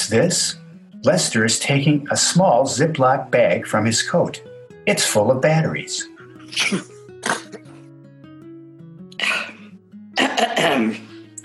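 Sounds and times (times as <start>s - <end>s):
speech: 0.1s - 6.9s
person sneezing: 6.4s - 7.8s, 9.2s - 9.6s, 10.2s - 11.1s
voiced breathy gasps: 9.2s - 9.8s.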